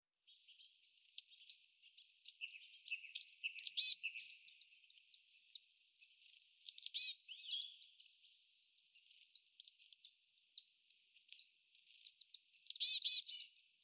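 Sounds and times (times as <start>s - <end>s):
marsh tit Poecile palustris calling: 2.3s - 4.5s, 6.6s - 8.3s, 12.6s - 13.5s.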